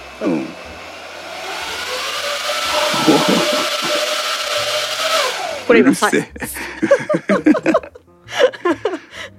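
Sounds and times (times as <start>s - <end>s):
hair dryer running on a low setting: 0.0s - 6.2s
speech: 0.2s - 0.7s, 5.7s - 7.9s
laughter: 2.8s - 4.1s, 6.1s - 9.3s.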